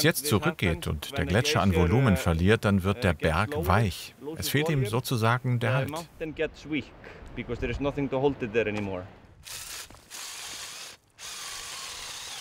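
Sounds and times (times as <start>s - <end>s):
speech: 0.0s - 9.8s
loud harsh drill boring holes into rock face: 9.4s - 12.3s.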